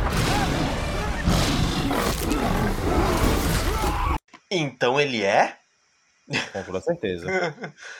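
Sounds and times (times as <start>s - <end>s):
lion roaring: 0.2s - 4.2s
speech: 4.5s - 5.6s, 6.3s - 7.9s
laughter: 7.2s - 7.8s.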